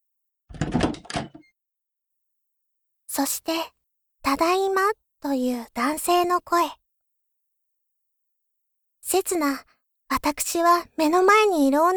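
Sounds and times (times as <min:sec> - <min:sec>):
front door opening with rattling and clunking handle and latch: 0:00.5 - 0:01.5
speech: 0:03.2 - 0:06.8, 0:09.0 - 0:11.9.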